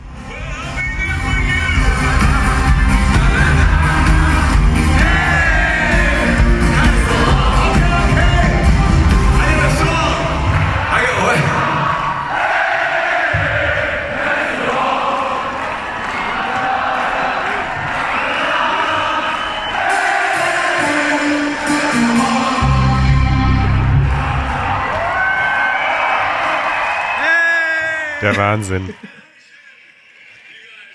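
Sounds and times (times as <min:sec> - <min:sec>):
large concert crowd cheering and yelling between songs: 0:00.1 - 0:29.6
laughter: 0:27.2 - 0:30.9
speech: 0:28.4 - 0:29.2.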